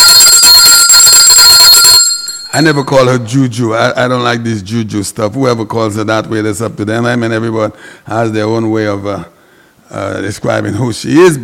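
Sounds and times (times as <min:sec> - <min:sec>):
metallic bell ringing: 0:00.0 - 0:03.4
speech: 0:02.5 - 0:09.3, 0:10.0 - 0:11.4.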